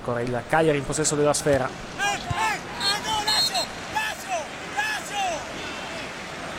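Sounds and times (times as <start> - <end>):
speech: 0.0 - 2.4
stadium noise: 0.0 - 6.5
players shouting on the pitch: 1.9 - 6.5.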